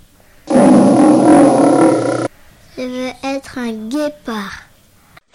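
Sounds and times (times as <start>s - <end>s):
lion roaring: 0.5s - 2.3s
speech: 2.8s - 4.6s.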